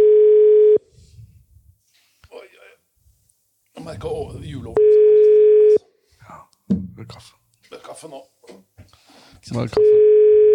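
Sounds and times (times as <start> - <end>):
telephone ringing tone: 0.0 - 0.8, 4.8 - 5.8, 9.9 - 10.5
speech: 4.0 - 4.8, 9.5 - 10.0.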